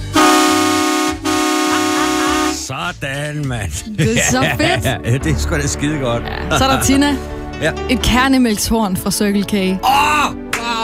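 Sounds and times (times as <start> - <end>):
truck horn honking: 0.0 - 2.7
speech: 3.3 - 10.4
laughter: 3.7 - 7.2.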